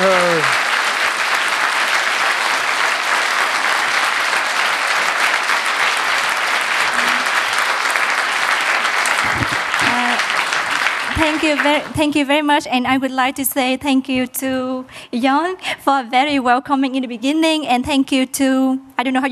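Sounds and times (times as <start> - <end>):
audience applause at the end of a lecture's question session: 0.0 - 12.1
speech: 11.5 - 19.3.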